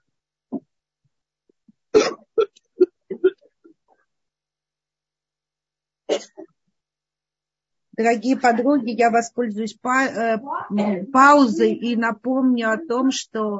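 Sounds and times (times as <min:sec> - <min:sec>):
short harsh coughs: 0:02.0 - 0:03.3, 0:06.1 - 0:06.4
throat-clearing bursts: 0:02.0 - 0:03.3, 0:06.1 - 0:06.4
speech: 0:08.0 - 0:13.5.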